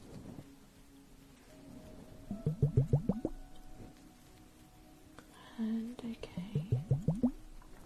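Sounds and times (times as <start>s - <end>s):
speech: 2.3s - 2.8s
bubbles crackling inside an ice globe held against the ear: 2.3s - 3.4s, 6.6s - 7.4s.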